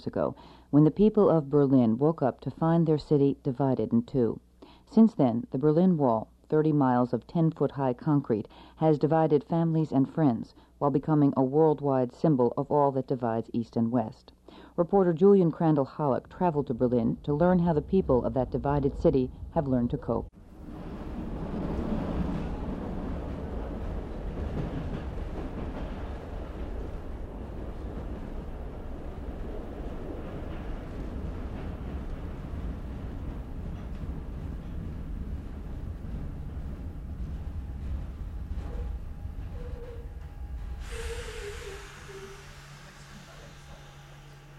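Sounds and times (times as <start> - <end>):
speech: 0.0 - 20.4
train running on railway track at the East German border crossing at Marienborn: 16.2 - 44.5
rattling train wheels: 20.7 - 44.5
faint whine: 36.9 - 44.5.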